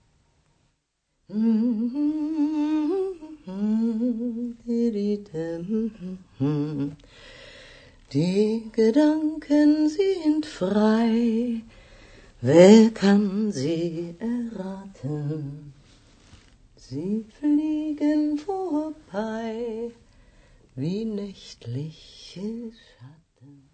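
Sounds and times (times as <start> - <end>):
speech: 1.3 - 2.1, 8.1 - 11.8, 12.4 - 15.6, 16.9 - 20.0, 20.8 - 23.6
woman singing a German folk song unaccompanied: 1.3 - 7.0, 8.1 - 11.7, 12.4 - 15.8, 16.8 - 20.0, 20.8 - 23.7.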